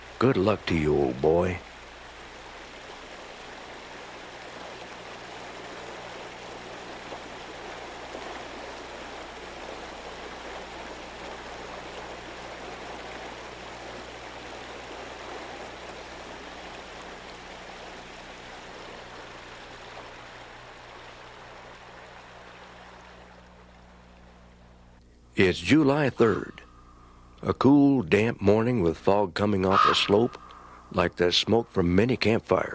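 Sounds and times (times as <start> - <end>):
creek water rushing over stones: 0.0 - 24.5
speech: 0.2 - 1.7, 25.4 - 26.6, 27.4 - 32.7.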